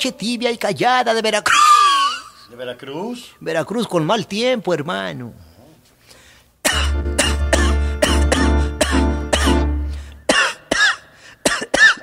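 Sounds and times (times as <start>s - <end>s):
speech: 0.0s - 1.9s, 2.5s - 5.4s
harsh rough coughing during a comedy routine: 6.6s - 12.0s.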